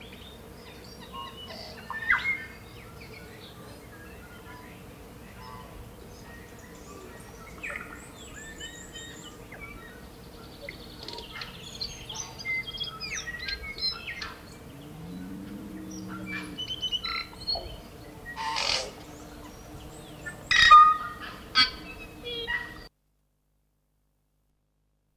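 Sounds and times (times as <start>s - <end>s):
tui song: 0.0s - 22.9s
low hum: 14.5s - 20.5s
low rising sound: 14.7s - 16.8s.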